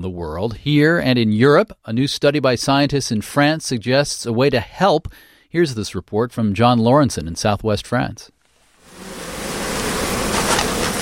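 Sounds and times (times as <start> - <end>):
speech: 0.0 - 8.4
honeybees buzzing around a hive frame in southwest France: 8.8 - 11.0.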